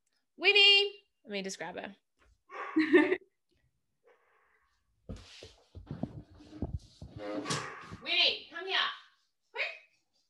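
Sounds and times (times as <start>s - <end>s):
speech: 0.4s - 2.0s, 2.8s - 3.2s
dog barking in the room: 2.5s - 3.0s, 7.5s - 8.0s
shuffling and movement noises: 5.1s - 8.2s.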